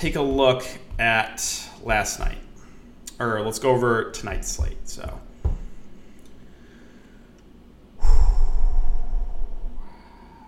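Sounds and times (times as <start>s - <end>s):
speech: 0.0s - 2.5s, 3.2s - 5.3s
deep loud exhale from a breathing exercise: 8.0s - 10.4s.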